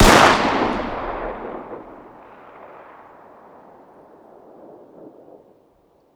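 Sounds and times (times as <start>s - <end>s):
distant 9x19 pistol firing: 0.0s - 2.8s.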